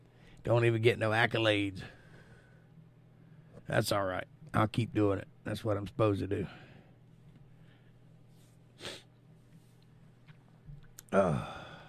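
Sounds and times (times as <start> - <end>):
low steady hum: 0.0 - 11.8
speech: 0.4 - 2.0, 3.7 - 6.7, 11.1 - 11.6
person blowing nose: 8.8 - 9.1.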